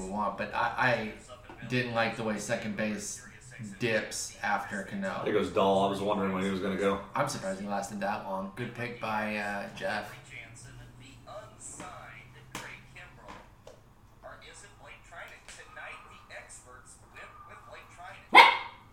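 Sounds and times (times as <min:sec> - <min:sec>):
speech: 0:00.2 - 0:10.2
dog yipping in short high-pitched bursts: 0:18.3 - 0:18.8.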